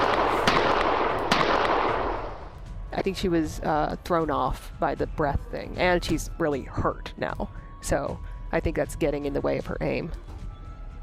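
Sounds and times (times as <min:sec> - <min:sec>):
handgun gunfire: 0:00.0 - 0:02.5
speech: 0:03.0 - 0:10.3.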